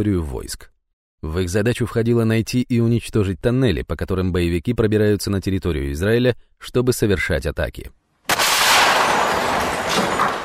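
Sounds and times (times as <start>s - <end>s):
speech: 0.0s - 8.0s
explosions in Gaza at night: 8.3s - 10.4s
gunfire in Gaza at night: 8.3s - 10.4s.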